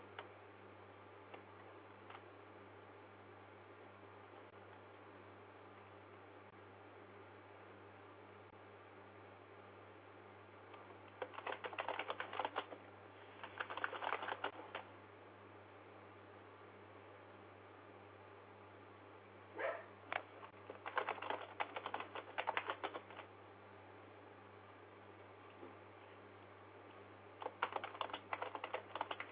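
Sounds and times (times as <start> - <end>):
typing on a computer keyboard: 11.1 - 12.8, 13.4 - 14.9, 20.1 - 23.3, 27.4 - 29.3.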